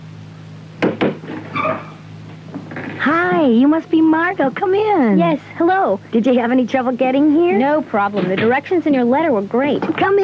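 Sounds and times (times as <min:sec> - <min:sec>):
visitor knocking on a front door: 0:00.8 - 0:01.3
speech: 0:03.0 - 0:10.2.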